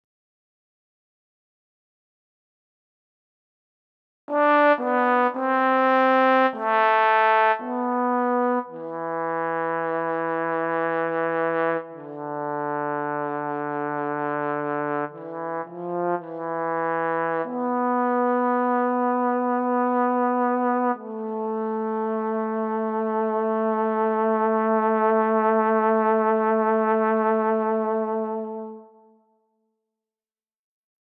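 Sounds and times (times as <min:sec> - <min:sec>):
trombone playing with vibrato: 0:04.3 - 0:28.9.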